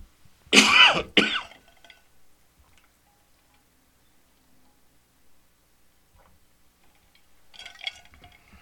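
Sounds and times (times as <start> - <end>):
loud harsh dry coughing into the microphone: 0.5 - 1.7.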